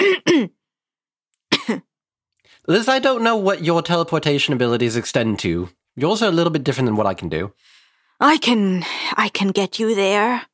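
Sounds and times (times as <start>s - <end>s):
short raspy coughs: 0.0s - 0.6s, 1.5s - 1.9s
speech: 1.7s - 1.9s, 2.6s - 10.5s.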